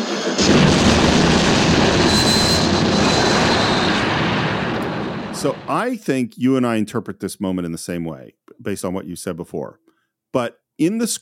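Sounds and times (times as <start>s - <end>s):
bridge explosion: 0.4s - 6.0s
speech: 5.4s - 11.1s.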